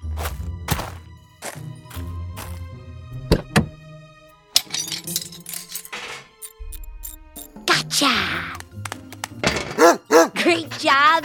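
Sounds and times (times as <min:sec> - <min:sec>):
metal hubcap dropped by a small dog clattering in a bathtub: 0:04.6 - 0:06.6, 0:09.4 - 0:09.8
speech: 0:08.0 - 0:08.6, 0:09.8 - 0:11.2.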